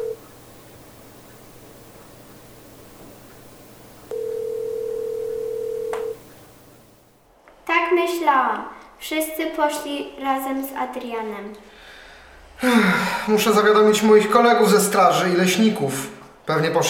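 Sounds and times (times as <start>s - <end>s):
telephone dial tone: 0.1s - 4.1s
quiet hiss: 0.1s - 4.5s, 5.4s - 7.3s
speech: 8.3s - 11.8s, 12.6s - 16.8s.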